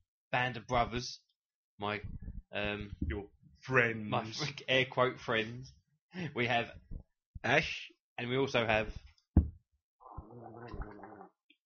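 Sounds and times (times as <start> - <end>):
speech: 0.3 - 9.1
person gargling wetly: 10.0 - 11.4.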